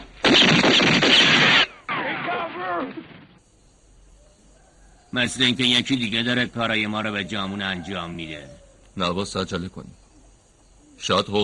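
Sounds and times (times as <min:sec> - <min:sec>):
rapid gunfire from automatic weapons: 0:00.2 - 0:03.3
speech: 0:05.1 - 0:10.0, 0:11.0 - 0:11.4.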